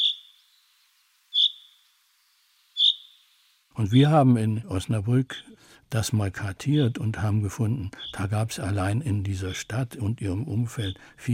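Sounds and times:
common chaffinch rain call: 0.0 - 3.6
speech: 3.8 - 11.3.

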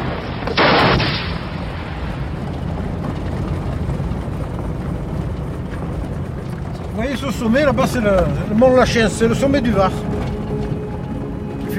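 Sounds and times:
artillery fire at a military firing range: 0.0 - 4.4
continuous rumbling: 0.0 - 11.7
speech: 7.1 - 10.2.

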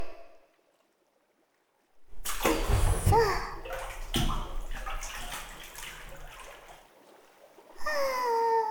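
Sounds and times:
hot water sloshing as someone steps into a jacuzzi bath: 2.1 - 8.6.

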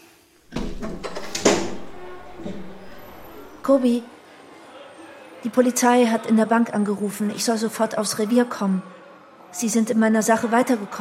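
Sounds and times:
window sliding open with a rough rumble and clack: 0.5 - 3.7
speech: 3.7 - 4.2, 5.4 - 10.9.

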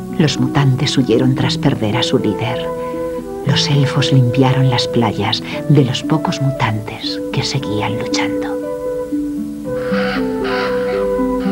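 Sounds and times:
sustained tonal background: 0.0 - 11.5
speech: 0.2 - 2.8, 3.5 - 8.6
hundreds of black birds circling and cawing: 9.7 - 11.5.

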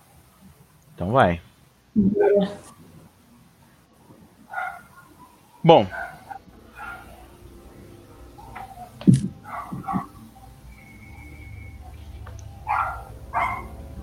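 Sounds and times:
speech: 1.0 - 2.8, 5.6 - 6.1
small dog barking: 4.5 - 7.2, 8.4 - 10.2, 12.6 - 13.8.

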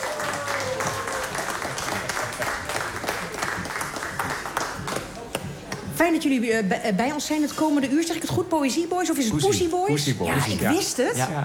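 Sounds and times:
audience applause welcoming poets at a live theatre-festival event: 0.0 - 5.7
speech: 6.1 - 11.4.

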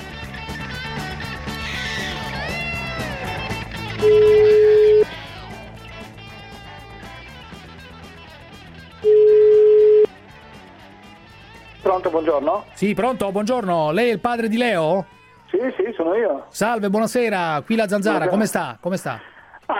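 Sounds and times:
music: 0.0 - 19.2
ringback tone of an outgoing telephone call: 4.0 - 5.1, 9.0 - 10.1
speech: 12.1 - 19.7.

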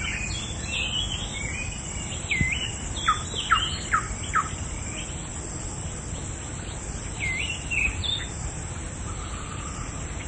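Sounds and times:
Oriental magpie-robin singing: 0.0 - 5.1, 7.2 - 8.3
steady low background noise: 0.0 - 10.2.

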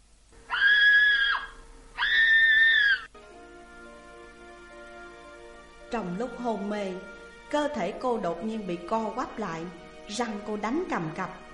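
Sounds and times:
woman screaming in terror: 0.5 - 3.1
speech: 5.9 - 11.4.

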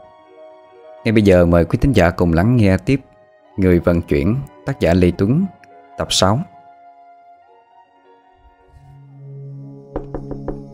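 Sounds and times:
speech: 1.0 - 6.5
knocking on a door: 10.0 - 10.7.

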